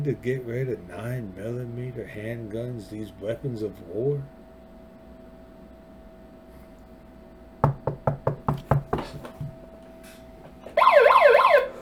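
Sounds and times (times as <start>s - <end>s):
speech: 0.0s - 4.4s
quick firm knocks on a door: 7.6s - 9.6s
loud wailing emergency siren: 10.7s - 11.7s.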